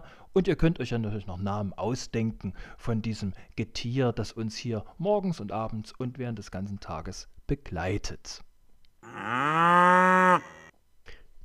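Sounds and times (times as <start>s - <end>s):
speech: 0.4s - 10.6s
cow mooing: 9.0s - 10.7s.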